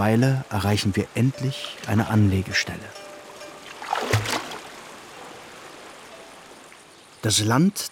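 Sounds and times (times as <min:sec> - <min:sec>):
speech: 0:00.0 - 0:03.0, 0:07.2 - 0:07.9
moving water: 0:00.0 - 0:07.9
water splashing against the hull of a wooden ferry: 0:03.6 - 0:05.0.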